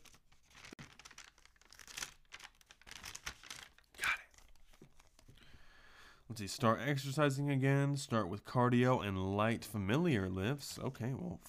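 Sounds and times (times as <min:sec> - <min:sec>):
taped paper being peeled off a page: 0:00.0 - 0:05.2
speech: 0:06.3 - 0:11.4.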